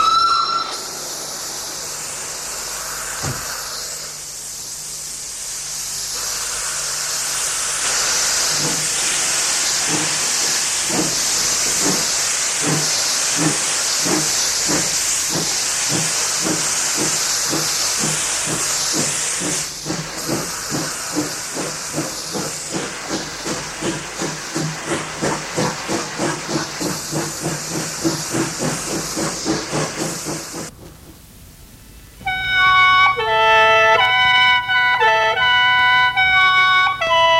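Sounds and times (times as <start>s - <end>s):
brief tone: 0.0s - 0.9s
steam train hissing before departure: 0.0s - 31.0s, 32.1s - 37.3s.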